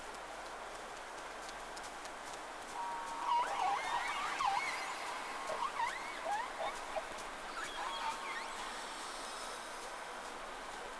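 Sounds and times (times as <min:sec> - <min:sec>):
steady hiss of water noise: 0:00.0 - 0:10.9
whales whistling: 0:02.8 - 0:09.8.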